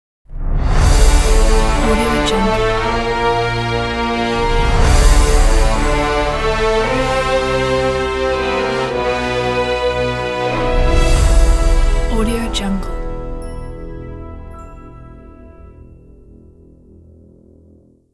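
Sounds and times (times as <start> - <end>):
dark tense orchestral ident music: 0.3 - 18.0.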